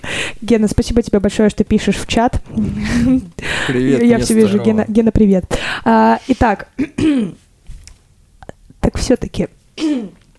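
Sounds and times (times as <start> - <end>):
speech: 0.4 - 7.4, 8.8 - 10.2
throat clearing: 6.8 - 7.4, 9.8 - 10.2.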